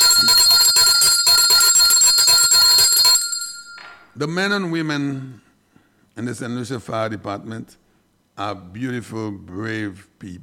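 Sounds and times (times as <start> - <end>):
loud bright bell ringing rapidly: 0.0 - 4.0
speech: 4.2 - 5.4, 6.2 - 7.8, 8.4 - 10.4.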